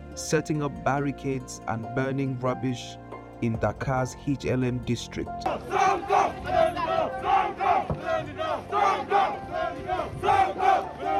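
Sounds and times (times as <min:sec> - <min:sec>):
speech: 0:00.2 - 0:07.2
large angry protest crowd in Dakar chanting: 0:05.4 - 0:11.1.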